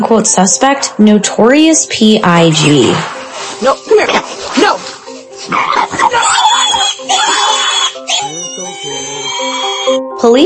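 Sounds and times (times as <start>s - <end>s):
speech: 0.0s - 4.8s, 10.2s - 10.4s
pig grunting oinks: 5.4s - 6.2s
pig squealing shrilly: 5.4s - 10.0s.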